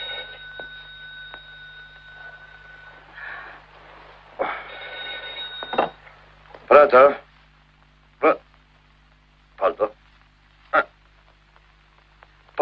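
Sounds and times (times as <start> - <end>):
telephone ringing with a steady electronic tone: 0.0 - 6.2
hiss: 0.0 - 12.6
speech: 6.7 - 7.2, 8.2 - 8.4.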